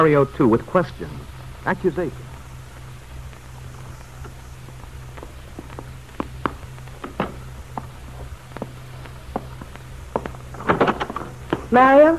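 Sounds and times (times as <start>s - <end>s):
speech: 0.0s - 2.3s, 11.7s - 12.1s
steady low hum: 0.0s - 12.1s
footsteps of someone coming in through a door: 2.2s - 11.9s
soft thuds: 4.2s - 11.8s.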